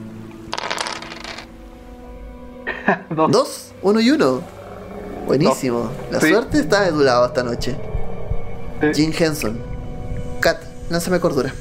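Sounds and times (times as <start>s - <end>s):
pair of eight-sided dice clattering across a hard surface: 0.5s - 1.5s
speech: 2.9s - 4.6s, 5.3s - 7.9s, 8.8s - 9.7s, 10.4s - 11.6s.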